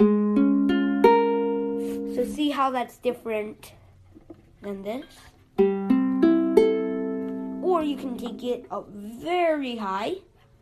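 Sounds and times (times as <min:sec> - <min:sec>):
ukulele strummed with a capo one fret up: 0:00.0 - 0:02.4, 0:04.2 - 0:08.8
speech: 0:02.6 - 0:03.8, 0:04.6 - 0:05.9, 0:07.7 - 0:10.3.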